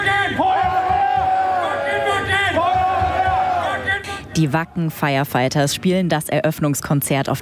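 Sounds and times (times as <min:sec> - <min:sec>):
large festival crowd shouting and cheering: 0:00.0 - 0:04.9
speech: 0:04.4 - 0:07.4.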